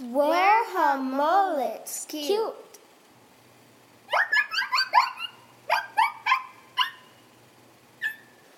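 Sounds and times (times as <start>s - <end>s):
speech: 0.2s - 2.7s
dog yapping playfully in high-pitched bursts: 4.1s - 7.1s, 8.0s - 8.4s.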